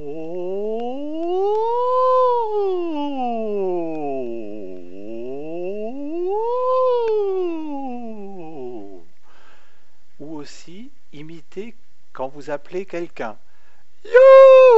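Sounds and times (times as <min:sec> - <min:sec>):
voice imitating a siren as a vocal warm-up before high soprano singing: 0:00.0 - 0:09.0, 0:14.1 - 0:14.7
speech: 0:12.3 - 0:13.4.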